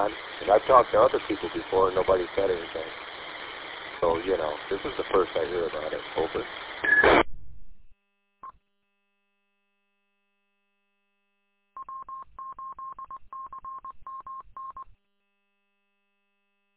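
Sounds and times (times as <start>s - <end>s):
speech: 0.0s - 3.1s, 4.0s - 7.2s
amateur radio noise burst as the mic is unkeyed: 0.0s - 7.3s.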